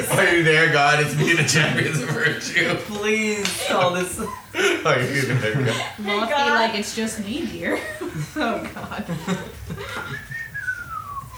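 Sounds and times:
speech: 0:00.0 - 0:10.2
laughter: 0:00.0 - 0:11.3
person whistling one long casual note: 0:10.0 - 0:11.3.

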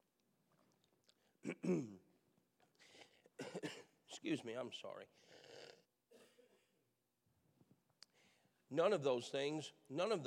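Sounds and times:
person coughing and clearing throat: 0:01.4 - 0:02.0, 0:03.4 - 0:04.0
speech: 0:01.4 - 0:02.0, 0:04.2 - 0:05.5, 0:08.7 - 0:10.2.

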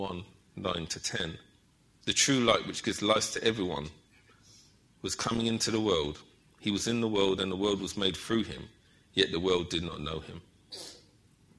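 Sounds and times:
speech: 0:00.0 - 0:04.0, 0:05.0 - 0:10.9
sneeze: 0:10.7 - 0:11.2.

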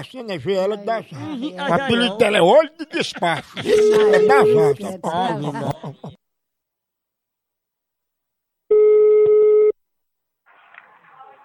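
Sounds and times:
speech: 0:00.0 - 0:06.2
laughter: 0:00.9 - 0:06.2
telephone line ring tone while placing a call: 0:03.7 - 0:04.6, 0:08.7 - 0:09.8.

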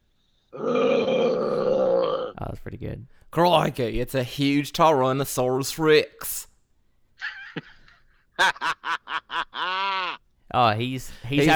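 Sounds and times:
person imitating a lion with a growling roar: 0:00.6 - 0:02.4
speech: 0:02.6 - 0:06.5, 0:08.4 - 0:08.8, 0:10.5 - 0:11.5
laughter: 0:07.2 - 0:10.2, 0:11.3 - 0:11.5.

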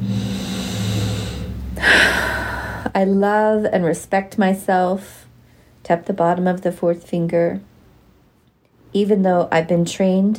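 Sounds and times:
big deep breath in: 0:00.0 - 0:02.9
low steady hum: 0:00.0 - 0:10.3
speech: 0:02.9 - 0:05.2, 0:05.9 - 0:07.7, 0:08.9 - 0:10.3.

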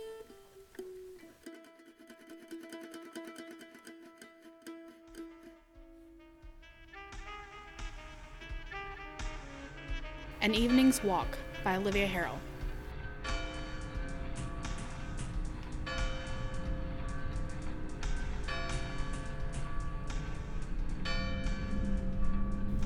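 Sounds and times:
steady low rumble: 0:10.0 - 0:22.8
speech: 0:10.4 - 0:12.5
large town square clock bell tolling for midnight: 0:12.9 - 0:22.8.

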